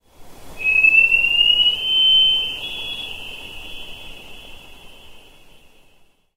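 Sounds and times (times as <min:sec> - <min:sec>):
sonar sweep: 0:00.6 - 0:05.1.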